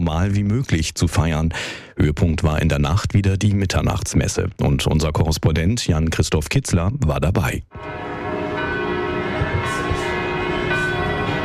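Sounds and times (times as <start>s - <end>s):
speech: 0.0s - 8.1s
church bells ringing festively: 7.8s - 11.4s.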